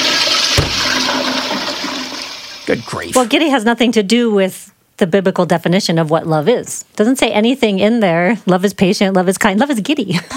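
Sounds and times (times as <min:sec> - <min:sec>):
toilet flushing: 0:00.0 - 0:03.3
speech: 0:02.7 - 0:10.3.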